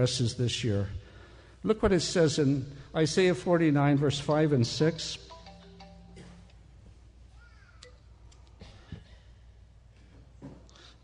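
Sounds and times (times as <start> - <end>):
speech: 0.0 - 1.0, 1.6 - 5.2
mobile phone timer alert soft electronic tones: 5.1 - 6.4.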